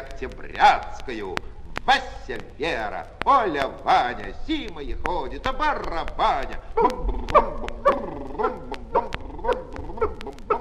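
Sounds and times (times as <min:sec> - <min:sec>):
speech: 0:00.2 - 0:07.7
puppy barking in high yips: 0:06.7 - 0:10.5.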